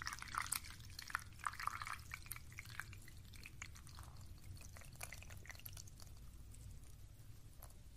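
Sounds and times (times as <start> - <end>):
hot water for tea pouring into a cup: 0.0 - 7.8.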